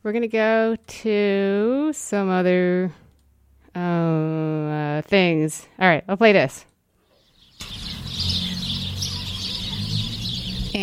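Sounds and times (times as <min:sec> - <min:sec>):
speech: 0:00.0 - 0:03.0, 0:03.7 - 0:06.7
birds singing in a backyard in December: 0:07.0 - 0:10.8.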